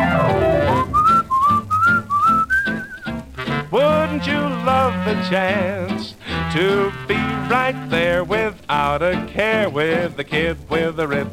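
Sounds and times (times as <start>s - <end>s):
person whistling a short bright melody: 0.0s - 3.7s
steady rhythmic instrumental backing music: 0.0s - 11.3s
speech: 4.2s - 11.3s.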